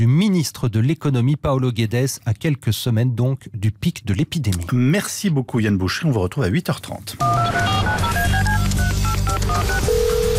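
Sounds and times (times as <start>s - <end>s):
speech: 0.0s - 8.1s
touch-tone telephone dialing beeps: 7.2s - 10.3s.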